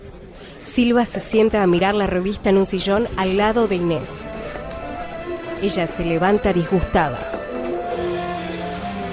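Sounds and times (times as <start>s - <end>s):
speech: 0.8s - 4.4s, 5.6s - 7.4s
low sustained musical tones: 3.2s - 9.1s
steady rain: 7.9s - 9.1s.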